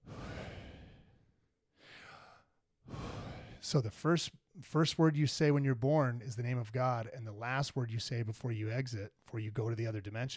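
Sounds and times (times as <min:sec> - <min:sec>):
deep breathing in and out in a meditation setting: 0:00.0 - 0:03.8
speech: 0:03.6 - 0:10.3.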